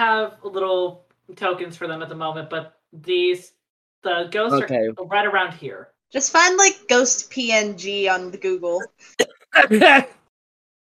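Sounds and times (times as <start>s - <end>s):
speech: 0.1s - 10.2s
person laughing and coughing at the same time: 9.2s - 10.3s.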